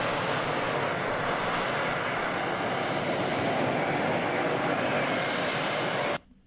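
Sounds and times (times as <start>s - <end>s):
Harrier jump jet engine roar: 0.0s - 6.3s.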